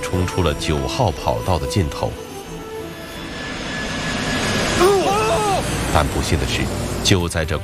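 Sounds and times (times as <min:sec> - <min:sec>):
speech: 0:00.1 - 0:02.3, 0:06.0 - 0:07.6
jet airliner engine roar on takeoff roll: 0:00.3 - 0:07.6
high jet engine whine climbing in pitch: 0:01.1 - 0:07.4.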